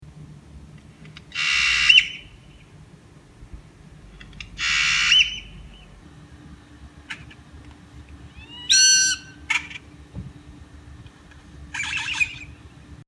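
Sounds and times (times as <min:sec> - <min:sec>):
bird noise: 0:01.2 - 0:02.8, 0:04.0 - 0:06.2, 0:08.2 - 0:10.0, 0:11.7 - 0:12.7.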